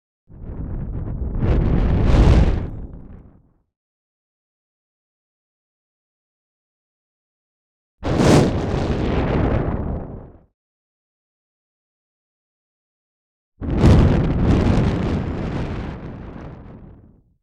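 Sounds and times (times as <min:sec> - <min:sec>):
fire fireball: 0:00.4 - 0:03.4, 0:08.0 - 0:10.4, 0:13.6 - 0:16.0.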